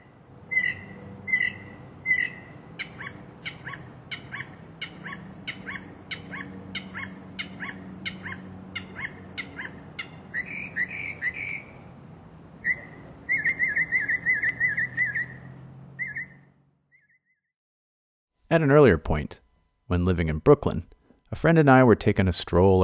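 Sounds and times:
male mockingbird singing: 0:00.0 - 0:16.4
faint hum: 0:00.0 - 0:16.8, 0:18.4 - 0:22.8
speech: 0:18.6 - 0:22.8.

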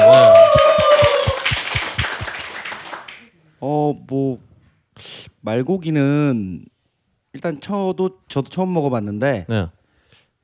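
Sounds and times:
brief tonal vocal sound or cheer: 0:00.0 - 0:02.2
small group clapping hands: 0:00.0 - 0:03.3
speech: 0:04.1 - 0:06.7, 0:07.4 - 0:09.8.

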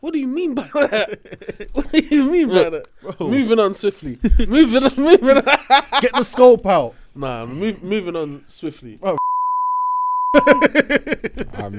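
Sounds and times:
speech: 0:00.0 - 0:09.3, 0:10.3 - 0:11.7
laughter: 0:00.5 - 0:03.6, 0:04.2 - 0:06.6, 0:10.4 - 0:11.7
electronic censor bleep tone: 0:09.2 - 0:10.7.

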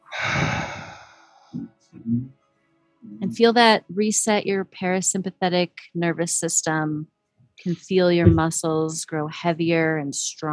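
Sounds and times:
soft vocal murmurs: 0:00.0 - 0:01.0, 0:01.6 - 0:02.3
slow exhale during breathing exercise: 0:00.0 - 0:01.6
speech: 0:01.9 - 0:02.4, 0:03.0 - 0:10.5.

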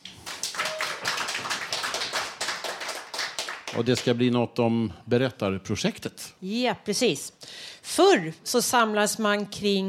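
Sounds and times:
small studio audience clapping for a guest: 0:00.0 - 0:04.3
speech: 0:03.7 - 0:09.8.

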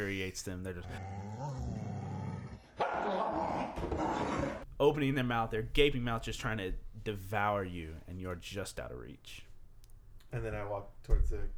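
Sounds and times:
speech: 0:00.0 - 0:01.7, 0:03.0 - 0:09.5, 0:10.3 - 0:11.5
person imitating chained dogs barking and snapping: 0:00.9 - 0:04.5.

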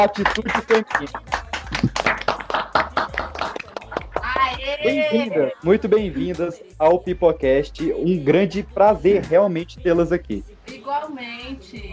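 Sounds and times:
person's voice: 0:00.0 - 0:01.3, 0:04.2 - 0:10.4
speech: 0:00.0 - 0:01.8, 0:04.8 - 0:11.9
small group applauding with hands clapping: 0:00.0 - 0:04.9.

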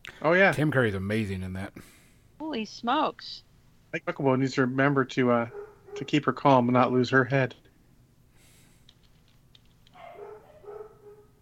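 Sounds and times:
faint hum: 0:00.0 - 0:11.3
speech: 0:00.2 - 0:07.6
dogs barking while chasing each other: 0:05.4 - 0:06.4, 0:09.9 - 0:11.3.

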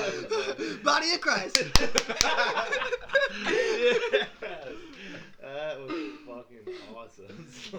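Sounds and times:
several people chuckling and laughing: 0:00.0 - 0:07.7
speech: 0:00.8 - 0:04.8
hand slapping a boxed-wine bag: 0:01.5 - 0:02.7.

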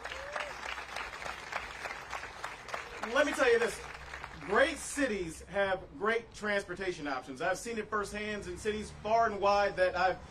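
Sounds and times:
audience applauding for a city alderman: 0:00.0 - 0:04.6
speech: 0:03.1 - 0:03.9, 0:04.5 - 0:10.2.

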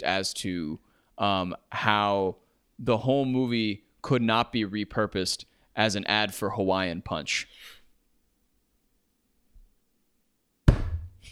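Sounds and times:
speech: 0:00.0 - 0:07.8
hand slamming down on a table: 0:10.7 - 0:11.3.

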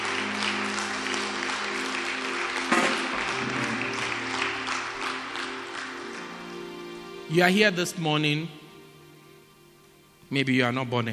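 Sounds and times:
audience applause: 0:00.0 - 0:06.9
speech: 0:07.3 - 0:08.6, 0:10.3 - 0:11.1.

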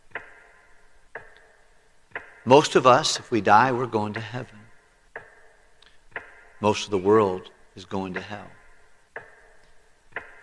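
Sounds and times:
clock ticking: 0:00.0 - 0:10.4
speech: 0:02.4 - 0:04.6, 0:06.6 - 0:08.6.

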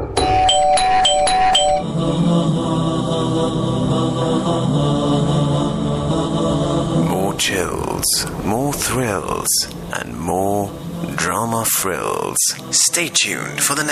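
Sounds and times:
electronic doorbell ringing: 0:00.1 - 0:01.9
musical backdrop: 0:00.2 - 0:13.9
speech: 0:08.8 - 0:13.9.

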